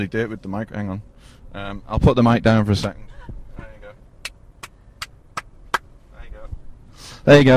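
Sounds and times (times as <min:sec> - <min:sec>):
speech: 0:00.0 - 0:03.4, 0:07.0 - 0:07.5
low rumble of road traffic: 0:00.0 - 0:07.5
sharp single hand claps: 0:04.2 - 0:05.8.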